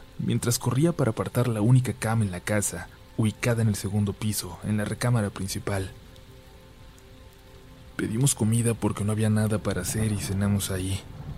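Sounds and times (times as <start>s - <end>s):
light rain falling: 0.0s - 11.3s
speech: 0.2s - 6.0s, 8.0s - 11.2s.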